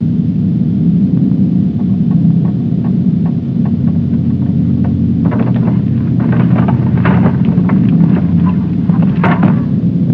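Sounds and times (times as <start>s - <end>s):
earthquake rumble: 0.0s - 10.1s.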